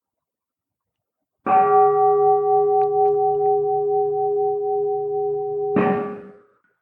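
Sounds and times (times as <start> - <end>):
large temple bell struck and ringing: 1.5 - 6.4.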